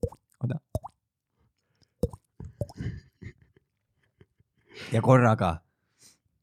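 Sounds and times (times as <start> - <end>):
speech: 0.0 - 0.6, 4.9 - 5.6
water drops plopping into water: 0.0 - 1.0, 2.0 - 2.8.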